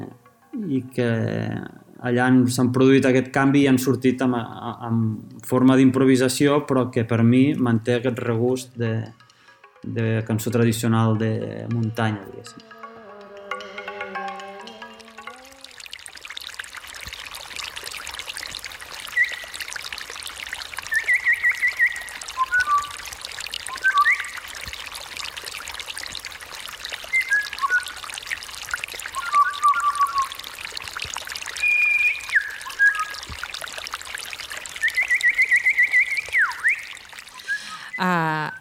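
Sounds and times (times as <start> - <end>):
music: 0.0 - 1.8, 8.3 - 15.9
rushing stream-like background: 0.0 - 38.0
speech: 0.6 - 9.2, 9.8 - 12.8
person imitating birdsong with whistled chirps and trills: 19.0 - 19.7, 20.8 - 24.8, 27.0 - 28.2, 29.0 - 30.6, 31.5 - 33.4, 34.6 - 38.5.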